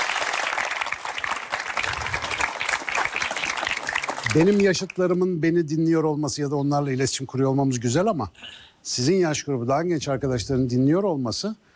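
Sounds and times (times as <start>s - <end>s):
audience applause: 0.0s - 5.0s
speech: 4.3s - 11.7s.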